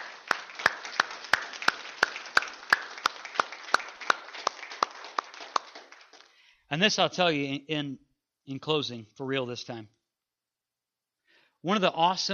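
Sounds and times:
crowd applauding indoors: 0.0 - 6.4
person clapping a sharp even rhythm: 0.0 - 6.4
speech: 6.7 - 10.0, 11.6 - 12.3.

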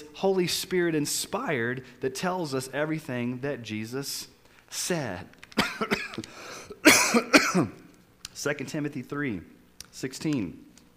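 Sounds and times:
speech: 0.2 - 7.8, 8.4 - 10.7
person coughing: 5.6 - 7.8.

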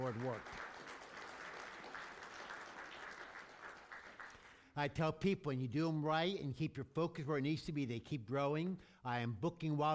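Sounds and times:
speech: 0.0 - 0.6, 4.8 - 9.9
crowd applauding: 0.0 - 4.7.

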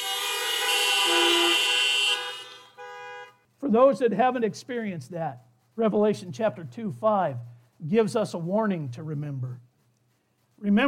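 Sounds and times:
several car horns honking in a sustained blare: 0.0 - 3.4
speech: 3.7 - 9.7, 10.6 - 10.8.

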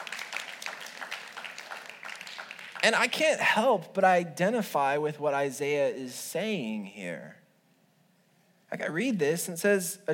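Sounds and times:
audience clapping: 0.0 - 3.4
speech: 2.8 - 7.4, 8.7 - 10.1.

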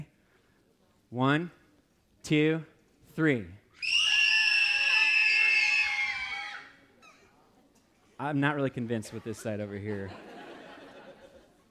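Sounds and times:
speech: 1.1 - 1.6, 2.2 - 3.6, 8.2 - 10.3
audience screaming loudly on cue: 3.8 - 6.8
laughter: 8.8 - 11.6.

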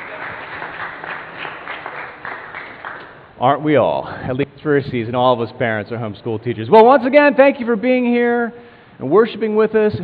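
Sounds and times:
audience applause for the band at a church worship service: 0.0 - 3.2
speech: 3.4 - 10.0.

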